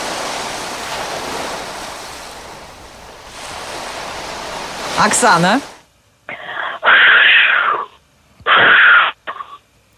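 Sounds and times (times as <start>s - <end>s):
live on-air imitation of ocean waves and sea breeze: 0.0s - 7.7s
speech: 5.0s - 5.7s.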